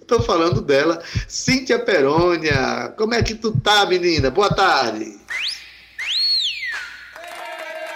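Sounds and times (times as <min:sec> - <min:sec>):
speech: 0:00.1 - 0:05.4
woman whistling sliding notes: 0:05.3 - 0:07.2.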